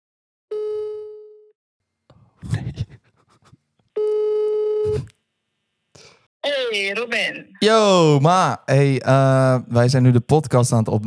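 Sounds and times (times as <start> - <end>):
ringback tone on an outgoing phone call: 0.5 - 1.5, 4.0 - 5.0
speech: 6.7 - 11.0.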